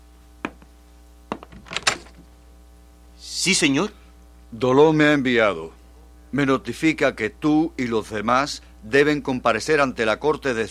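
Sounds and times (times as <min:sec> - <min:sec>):
door thud: 0:01.3 - 0:02.2
door scraping and rattling as it swings open with creaky clatter: 0:01.4 - 0:02.2
speech: 0:03.4 - 0:10.6.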